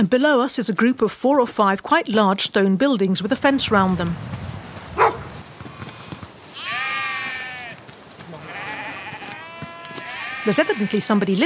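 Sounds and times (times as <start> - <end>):
speech: 0.0 - 4.4, 10.4 - 11.4
sheep bleating: 6.5 - 11.4.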